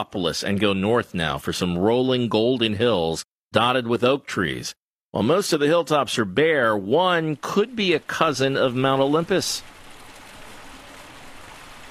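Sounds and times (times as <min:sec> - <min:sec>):
speech: 0:00.0 - 0:09.7
splashing fountains filling a marble-lined swimming pool: 0:05.5 - 0:11.8.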